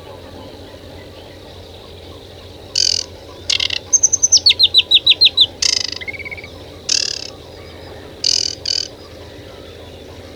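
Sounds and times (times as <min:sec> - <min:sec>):
bird giving short high tonal notes with layered overtones: 0:02.7 - 0:07.4, 0:08.2 - 0:09.0.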